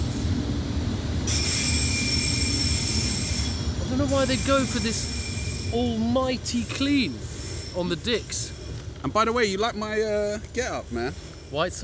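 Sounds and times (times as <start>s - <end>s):
train rumbling on rails: 0.0s - 11.8s
high metallic train wheel squeal: 1.2s - 6.0s, 7.2s - 8.8s
speech: 4.0s - 11.8s.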